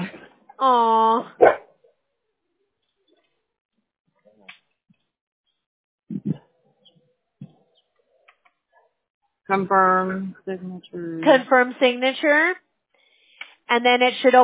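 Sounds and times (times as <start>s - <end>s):
speech: 0.6s - 1.4s, 9.5s - 12.6s, 13.7s - 14.4s
dog barking and growling: 1.3s - 1.8s.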